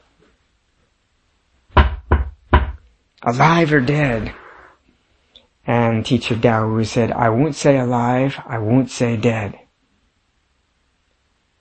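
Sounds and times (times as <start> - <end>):
knocking on a wooden surface: 1.8 - 2.8
speech: 3.2 - 4.4, 5.6 - 9.6.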